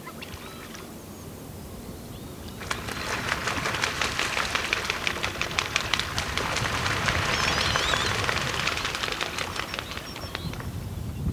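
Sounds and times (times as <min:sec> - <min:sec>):
cormorants diving and flying away: 0:02.4 - 0:11.2.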